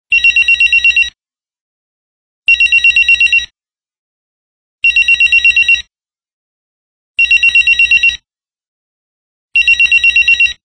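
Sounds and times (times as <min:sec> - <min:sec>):
phone ringer: 0:00.1 - 0:01.2, 0:02.5 - 0:03.5, 0:04.8 - 0:05.9, 0:07.2 - 0:08.3, 0:09.6 - 0:10.6.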